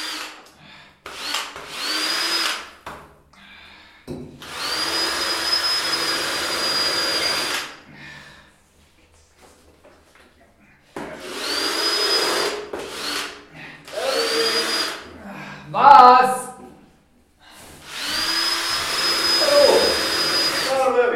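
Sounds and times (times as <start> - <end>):
power tool whirring on a construction site: 0.0 - 2.8, 4.4 - 7.8, 11.2 - 15.1, 17.8 - 21.0.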